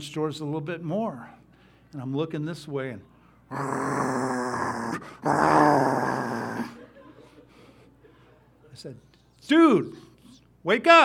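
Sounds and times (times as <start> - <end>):
speech: 0.0 - 6.8, 8.8 - 11.0
person imitating a dog growling in a living room: 3.5 - 6.8
laughter: 6.5 - 8.9.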